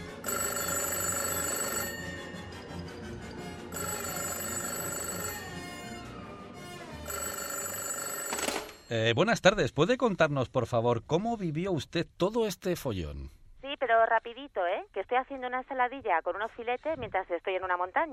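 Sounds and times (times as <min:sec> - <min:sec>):
telephone ringing: 0:00.2 - 0:02.8, 0:03.6 - 0:06.2, 0:06.9 - 0:09.0
speech: 0:08.9 - 0:18.1.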